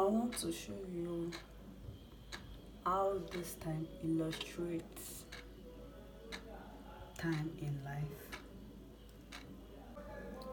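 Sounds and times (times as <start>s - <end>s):
clock ticking: 0.0s - 0.6s, 1.2s - 1.6s, 2.2s - 5.5s, 7.2s - 9.5s
speech: 0.3s - 1.6s, 2.8s - 5.3s, 7.2s - 8.4s.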